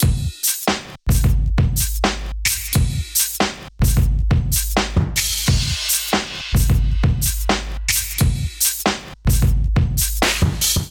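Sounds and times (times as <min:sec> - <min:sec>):
drum groove: 0:00.0 - 0:10.8.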